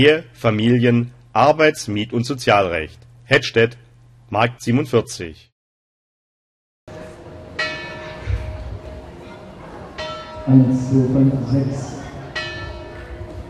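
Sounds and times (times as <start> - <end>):
speech: 0.0 - 5.5, 10.5 - 12.0
church carillon bells ringing from the St. Jakobi church in Hettstedt: 7.6 - 8.8, 10.0 - 13.4.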